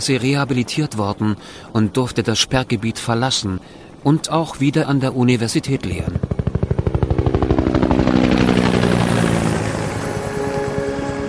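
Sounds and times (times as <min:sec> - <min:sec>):
speech: 0:00.0 - 0:06.4
helicopter rotor thumping: 0:05.8 - 0:11.2.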